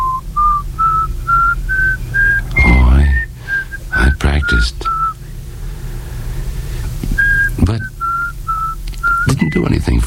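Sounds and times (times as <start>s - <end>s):
person whistling a short melody: 0.0s - 5.2s, 7.2s - 9.6s
low rumble: 0.0s - 10.0s.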